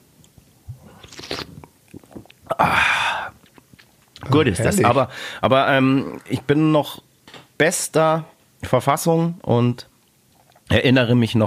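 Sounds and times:
person gulping down a drink: 0:00.7 - 0:04.2
speech: 0:04.3 - 0:09.9, 0:10.7 - 0:11.4.

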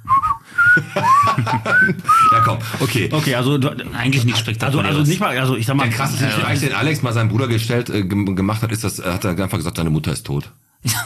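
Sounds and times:
forester whistling a short tune: 0:00.0 - 0:02.6
laughter: 0:00.6 - 0:03.1, 0:10.9 - 0:11.0
speech: 0:00.8 - 0:11.0.

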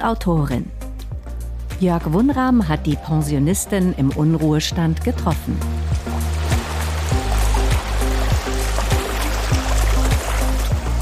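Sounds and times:
speech: 0:00.0 - 0:00.8, 0:01.8 - 0:05.9
river water rushing at the Enns and Steyr confluence in Steyr, Upper Austria: 0:05.7 - 0:11.0.

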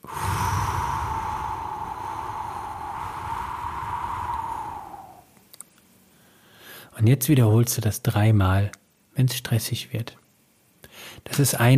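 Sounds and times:
slow breathing out during a calming breathing exercise: 0:00.0 - 0:05.3
speech: 0:07.0 - 0:10.2, 0:11.2 - 0:11.7.

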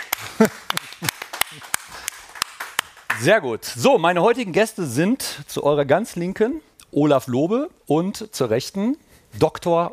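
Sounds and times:
audience clapping: 0:00.0 - 0:03.5
laughter: 0:00.1 - 0:01.8
speech: 0:03.2 - 0:09.9.

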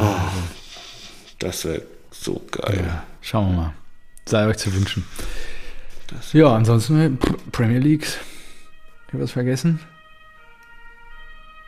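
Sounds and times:
speech: 0:01.4 - 0:05.5, 0:06.1 - 0:08.3, 0:09.1 - 0:09.9
ambulance siren as the ambulance drives past: 0:02.8 - 0:11.6.

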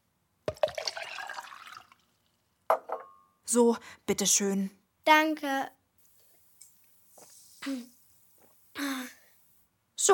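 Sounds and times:
water splashing into a glass: 0:00.5 - 0:02.3
glass clink as it is set down: 0:02.7 - 0:03.4
speech: 0:03.5 - 0:05.8, 0:07.6 - 0:08.0, 0:08.8 - 0:09.2, 0:10.0 - 0:10.1.

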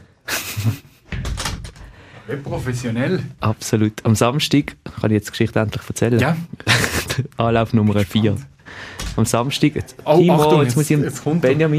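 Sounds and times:
laughter: 0:00.3 - 0:01.1, 0:06.2 - 0:07.4
door being pushed shut: 0:01.1 - 0:01.9
speech: 0:02.3 - 0:11.7.

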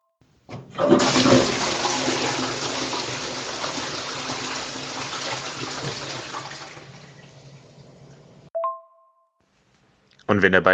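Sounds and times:
toilet flushing with rushing water: 0:00.5 - 0:08.5
speech: 0:10.4 - 0:10.7.

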